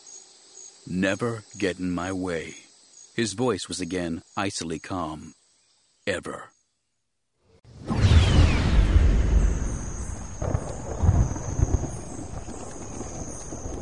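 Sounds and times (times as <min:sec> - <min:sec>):
speech: 0:00.9 - 0:02.6, 0:03.2 - 0:05.4, 0:06.1 - 0:06.5
rolling thunder in a rainstorm: 0:07.8 - 0:13.8
steady hiss of falling rain: 0:09.0 - 0:13.8.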